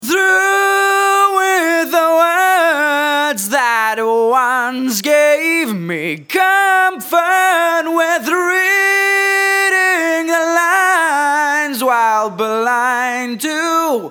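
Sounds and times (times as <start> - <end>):
dry voice then voice with reverb: 0.0 - 14.0.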